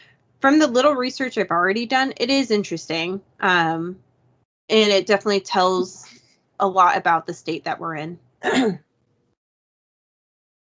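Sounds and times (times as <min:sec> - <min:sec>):
speech: 0:00.4 - 0:04.1, 0:04.7 - 0:08.9
suppressed cough: 0:08.4 - 0:08.8.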